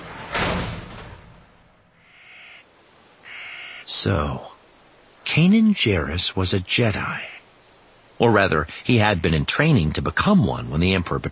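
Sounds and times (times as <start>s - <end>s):
heavy mechanical hangar door opening with a whoosh: 0.0s - 1.6s
faint hissing whine: 1.9s - 11.2s
speech: 3.9s - 4.5s, 5.3s - 7.4s, 8.2s - 11.2s.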